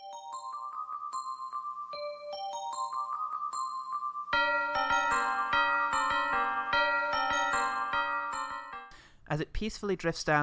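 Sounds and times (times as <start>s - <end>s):
bright bell-like Christmas carol melody: 0.0s - 9.0s
fuller instrumental arrangement with rhythmic pulse: 4.4s - 9.0s
speech: 9.3s - 10.4s.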